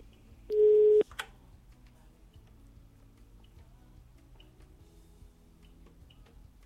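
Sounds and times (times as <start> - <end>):
telephone line busy tone beep: 0.5 - 1.0.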